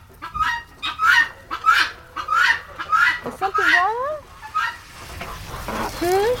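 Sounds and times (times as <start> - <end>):
chickens clucking: 0.0 - 6.3.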